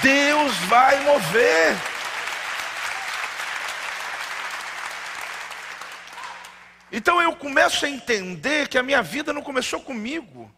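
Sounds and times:
speech: 0.0 - 2.0, 6.9 - 10.5
audience applause: 0.0 - 6.8.

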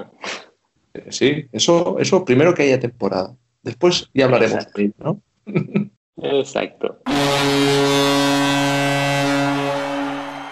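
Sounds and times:
speech: 1.0 - 8.1
laughter: 5.5 - 6.7
long deep brassy horn blast: 7.1 - 10.5.

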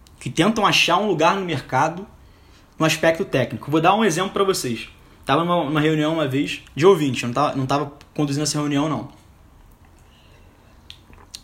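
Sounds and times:
speech: 0.2 - 2.2, 2.8 - 9.2
person sipping water: 10.8 - 11.4
small wet mouth clicks: 10.8 - 11.4.

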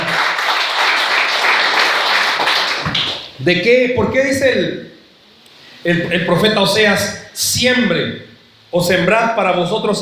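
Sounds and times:
audience applauding: 0.0 - 3.3
speech: 3.4 - 5.0, 5.8 - 9.9.

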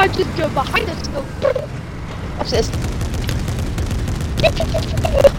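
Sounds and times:
speech: 0.1 - 1.8, 2.4 - 2.9, 4.4 - 5.3
video game gunfire: 2.4 - 5.3.

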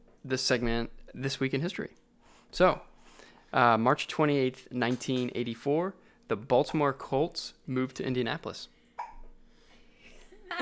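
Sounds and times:
speech: 0.2 - 2.9, 3.5 - 8.8
baby hiccup: 9.0 - 9.3.

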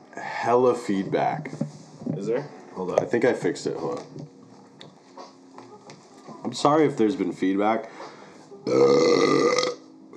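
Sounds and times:
speech: 0.4 - 4.2, 6.5 - 8.1, 8.7 - 9.4
loud burp: 8.7 - 9.8.

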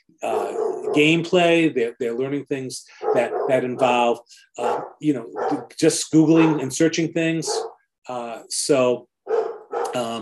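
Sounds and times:
dog barking: 0.2 - 1.2, 3.0 - 4.0, 4.6 - 5.7, 6.4 - 6.7, 7.5 - 7.8, 9.3 - 10.1
speech: 0.2 - 9.1, 9.9 - 10.2.

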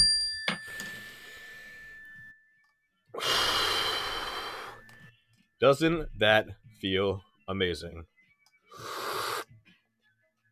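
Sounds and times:
mindfulness bell ringing: 0.0 - 2.6
long deep breath: 0.7 - 1.8, 3.2 - 5.0, 8.7 - 9.5
speech: 5.6 - 8.1.

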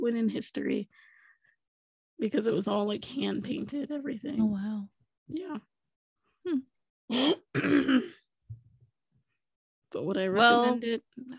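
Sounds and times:
speech: 0.1 - 1.1, 2.2 - 5.7, 6.4 - 8.2, 9.9 - 11.3
coughing and throat clearing: 7.1 - 8.3.

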